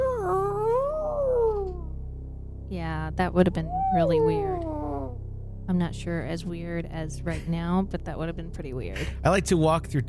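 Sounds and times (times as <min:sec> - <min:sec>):
person's voice imitating mating whale calls: 0:00.0 - 0:01.9, 0:03.5 - 0:05.2
speech: 0:03.1 - 0:04.7, 0:05.7 - 0:10.0.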